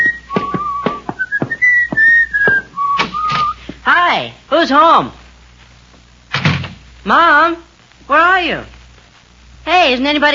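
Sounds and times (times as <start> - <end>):
person whistling a bright wandering tune: 0.0 - 3.6
footsteps thumping: 0.0 - 3.9
speech: 4.2 - 5.2, 7.0 - 8.8, 9.6 - 10.3.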